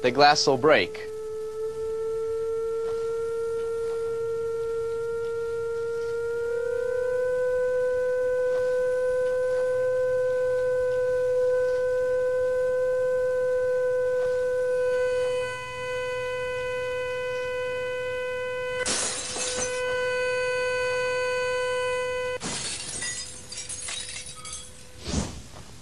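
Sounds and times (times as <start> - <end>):
loud steady electronic resonant tone vibrating a wine glass: 0.0 - 25.0
wine glass shattering from sound resonance: 18.9 - 19.8, 22.4 - 25.0
tinkling shards of a burst wine glass: 22.4 - 25.0
brief crash: 25.0 - 25.5.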